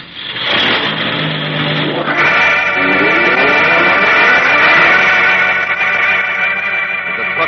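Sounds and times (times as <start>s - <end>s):
truck engine roaring as it drives off and accelerates hard: 0.0s - 7.4s.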